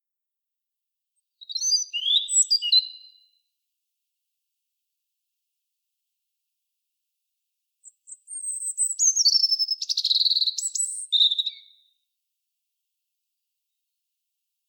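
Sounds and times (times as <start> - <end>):
European robin Erithacus rubecula singing: 1.4 - 3.4, 7.8 - 11.9.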